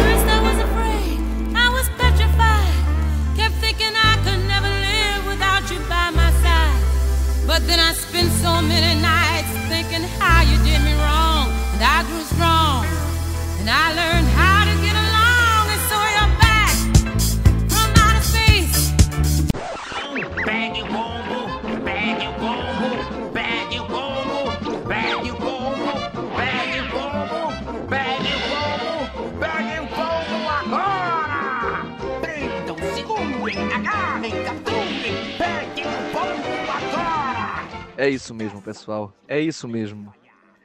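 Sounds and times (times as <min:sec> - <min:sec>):
person singing: 0:00.0 - 0:17.0, 0:20.4 - 0:37.6
cartoon theme song with heavy bass: 0:00.0 - 0:37.9
speech: 0:38.3 - 0:40.2.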